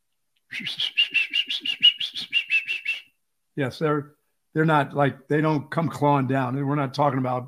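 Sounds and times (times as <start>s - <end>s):
person whistling an imitation of a cardinal's song: 0.5s - 3.2s
speech: 0.6s - 1.0s, 3.6s - 7.4s.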